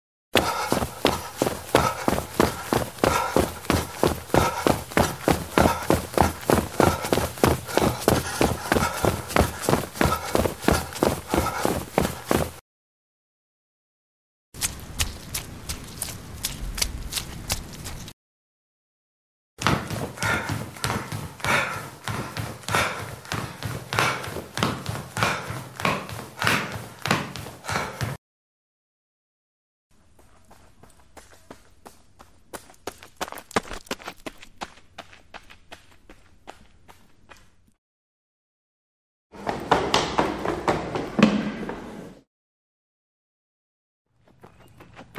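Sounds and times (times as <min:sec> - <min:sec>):
person breathing: 0:00.4 - 0:12.6, 0:19.6 - 0:28.2
running footsteps: 0:00.4 - 0:12.6, 0:14.6 - 0:18.1, 0:19.6 - 0:28.2, 0:30.0 - 0:37.7, 0:39.4 - 0:42.1.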